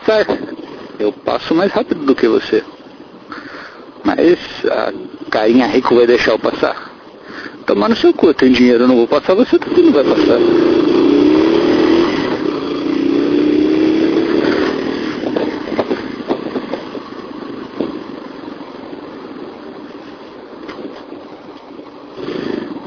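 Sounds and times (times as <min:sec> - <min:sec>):
busy city traffic in São Paulo Brazil: 0:00.0 - 0:22.8
speech: 0:00.1 - 0:02.7, 0:04.1 - 0:06.9, 0:07.7 - 0:10.7
motorcycle engine revving and idling in city traffic: 0:09.3 - 0:21.0, 0:21.7 - 0:22.8.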